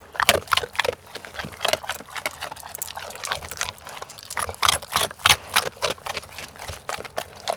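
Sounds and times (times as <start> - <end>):
dog chomping: 0.1 - 7.5.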